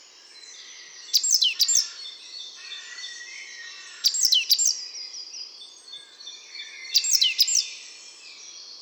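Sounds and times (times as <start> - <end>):
great tit calls: 0.8 - 4.8, 6.7 - 7.7.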